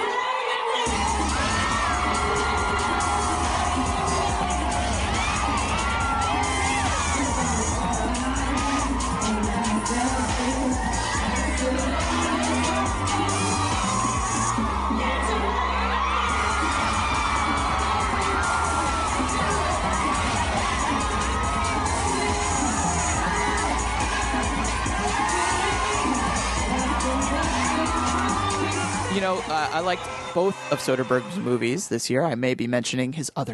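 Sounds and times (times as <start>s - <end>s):
room full of women watching a man strip and dance, screaming and cheering: 0.0s - 31.3s
loud thumping music: 0.9s - 15.6s, 16.2s - 30.0s
speech: 29.8s - 33.5s.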